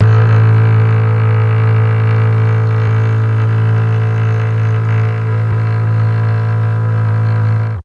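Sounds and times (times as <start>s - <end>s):
mellotron cello playing A1: 0.0s - 7.8s.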